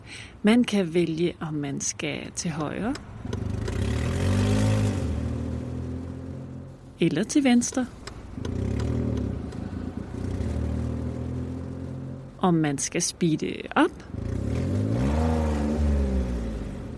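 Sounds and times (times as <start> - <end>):
speech: 0.1 - 3.1, 7.0 - 8.6, 12.4 - 14.1
car engine revving: 2.9 - 7.0, 7.8 - 12.4, 14.0 - 16.9.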